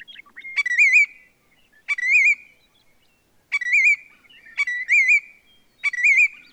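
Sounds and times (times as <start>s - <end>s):
willet calls: 0.0s - 1.3s, 1.9s - 2.5s, 3.5s - 6.5s.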